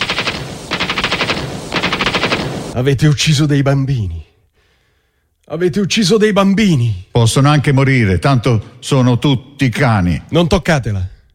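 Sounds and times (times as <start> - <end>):
machine gun fire at a hospital: 0.0 - 2.8
speech: 2.8 - 4.2, 5.5 - 11.1.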